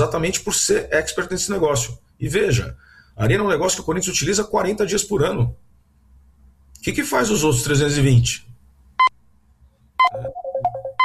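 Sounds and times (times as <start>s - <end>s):
speech: 0.0s - 5.6s, 6.8s - 8.5s, 10.1s - 10.4s
telephone ringtone for an incoming call: 10.0s - 11.0s.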